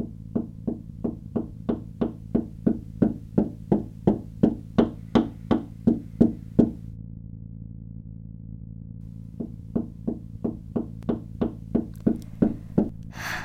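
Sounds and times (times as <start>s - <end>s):
rapid sharp tapping on a motel window: 0.0s - 6.8s, 9.3s - 13.0s
low constant hum: 0.0s - 13.4s.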